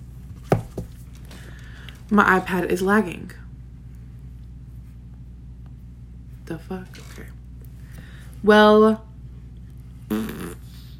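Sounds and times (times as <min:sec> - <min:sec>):
quiet hum: 0:00.0 - 0:10.9
speech: 0:02.1 - 0:03.4, 0:06.5 - 0:07.4, 0:08.4 - 0:09.1, 0:10.1 - 0:10.4
buzzy fart-like sound made with the mouth: 0:10.0 - 0:10.9.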